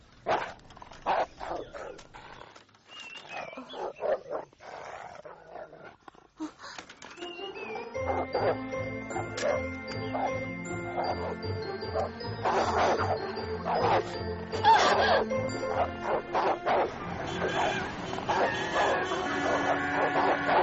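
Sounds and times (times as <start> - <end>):
dogs barking: 0.2 - 2.1, 3.4 - 5.8, 7.8 - 20.6
jingling: 6.9 - 20.6.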